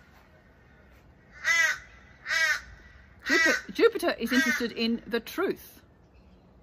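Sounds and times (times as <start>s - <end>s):
crow cawing: 0.4s - 4.8s
speech: 3.3s - 5.8s.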